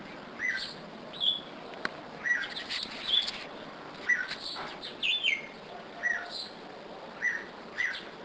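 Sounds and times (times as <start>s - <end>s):
soft hiss: 0.0s - 8.2s
bulbul singing: 0.4s - 1.6s, 2.2s - 3.4s, 4.0s - 8.2s.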